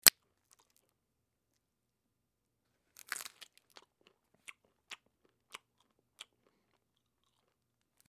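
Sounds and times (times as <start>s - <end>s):
person chewing with lips: 3.0s - 8.0s.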